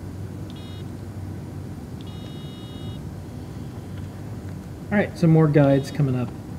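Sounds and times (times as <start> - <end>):
electronic beep tones from a handheld Simon memory game: 2.1 - 3.0
speech: 4.9 - 6.4.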